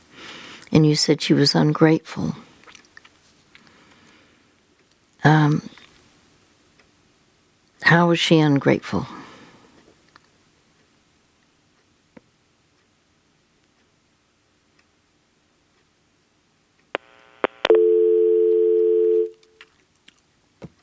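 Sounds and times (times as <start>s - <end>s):
speech: 0.7s - 2.5s, 5.2s - 5.7s, 7.9s - 9.2s
telephone dial tone while redialing: 17.0s - 19.4s.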